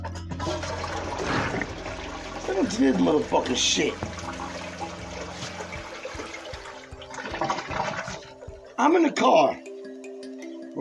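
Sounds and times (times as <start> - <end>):
toilet flushing: 0.3 - 8.4
speech: 2.6 - 4.2, 8.8 - 9.6.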